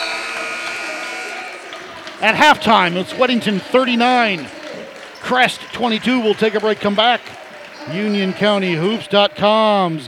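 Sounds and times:
basketball arena halftime buzzer: 0.0s - 3.0s
noisy basketball crowd murmuring: 0.0s - 10.0s
speech: 2.2s - 4.6s, 5.3s - 7.3s, 7.9s - 10.0s.

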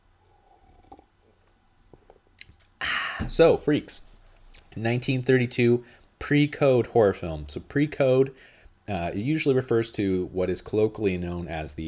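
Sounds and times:
sipping coffee: 0.2s - 3.3s
speech: 3.3s - 4.1s, 4.8s - 11.8s.

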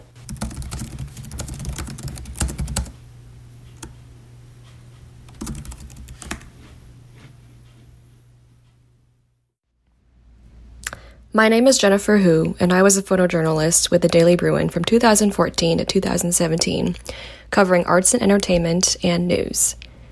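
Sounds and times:
steady low hum: 0.0s - 20.0s
hard typing on a work laptop keyboard: 0.2s - 3.0s, 5.3s - 6.5s
speech: 11.4s - 19.8s.

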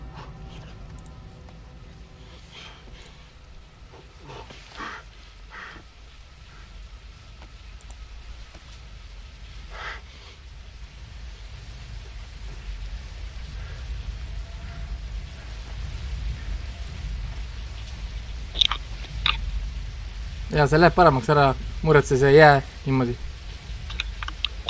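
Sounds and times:
steady rain: 0.0s - 24.6s
speech: 20.5s - 23.2s
rain drips and taps: 23.8s - 24.6s.

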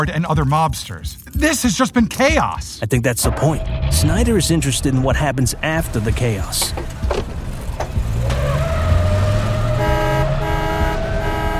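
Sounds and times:
speech: 0.0s - 7.0s
street traffic rumbling: 3.3s - 11.5s
car horns honking: 5.8s - 11.5s.

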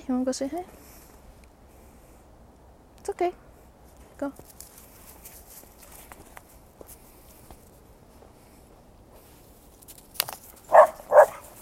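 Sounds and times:
speech: 0.1s - 0.9s, 3.0s - 3.4s, 4.2s - 4.6s
faint rustle: 0.4s - 2.7s, 3.3s - 11.6s
dog barking: 10.7s - 11.5s.

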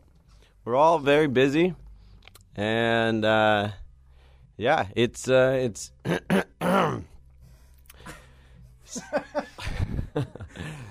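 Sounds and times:
speech: 0.6s - 1.8s, 2.6s - 3.8s, 4.6s - 7.1s, 8.9s - 10.8s
man clearing his throat: 6.0s - 7.1s
laughter: 8.9s - 10.9s.

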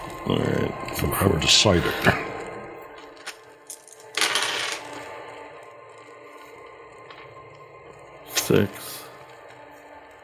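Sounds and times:
speech: 0.2s - 2.3s, 8.5s - 8.9s
handful of dice rolling onto a hard surface: 3.2s - 5.0s.

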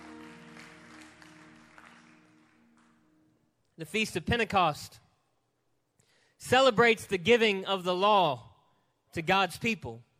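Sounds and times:
crowd clapping: 0.0s - 3.4s
speech: 3.8s - 5.0s, 6.4s - 8.5s, 9.1s - 10.1s.

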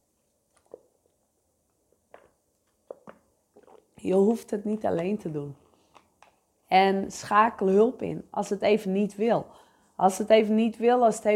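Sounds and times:
sipping and swallowing water: 0.3s - 4.0s
soft wet mouth clicks and gulps: 0.4s - 4.0s
speech: 4.0s - 5.6s, 6.7s - 11.3s.

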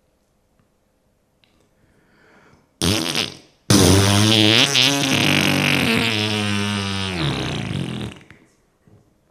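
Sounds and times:
fart: 2.8s - 8.5s.

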